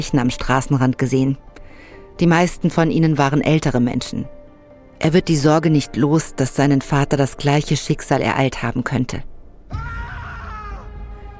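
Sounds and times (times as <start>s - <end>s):
speech: 0.0s - 1.5s, 2.2s - 4.4s, 5.0s - 9.8s
distant scream echoing at night: 9.7s - 11.3s.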